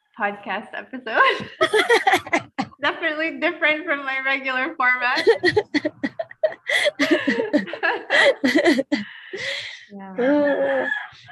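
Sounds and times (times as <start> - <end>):
speech: 0.2 - 6.1, 6.7 - 11.3
laughter: 1.2 - 3.0, 5.2 - 11.3
rooster crowing: 10.5 - 11.3.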